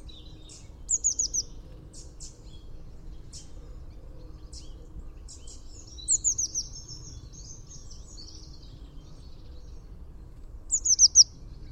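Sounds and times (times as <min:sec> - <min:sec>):
low background noise: 0:00.0 - 0:11.7
Eurasian blue tit Cyanistes caeruleus calling with high thin twittering notes: 0:00.1 - 0:02.6, 0:04.5 - 0:08.6, 0:10.7 - 0:11.3.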